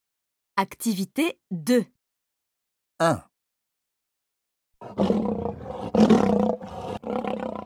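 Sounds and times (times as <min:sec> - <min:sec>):
speech: 0:00.6 - 0:02.0, 0:03.0 - 0:03.3, 0:04.8 - 0:06.4
lion roaring: 0:04.8 - 0:07.6.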